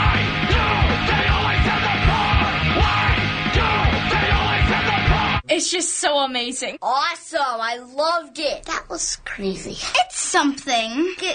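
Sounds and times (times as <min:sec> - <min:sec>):
distorted guitars: 0:00.0 - 0:05.4
harsh screamed vocals: 0:00.0 - 0:05.4
loud dense metal music from a music video: 0:00.0 - 0:05.4
pounding drums: 0:00.0 - 0:05.4
speech: 0:05.8 - 0:11.3.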